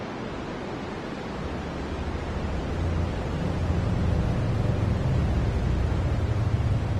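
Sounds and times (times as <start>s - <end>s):
broadband white noise: 0.2s - 6.9s
deep low rumble: 1.4s - 6.9s.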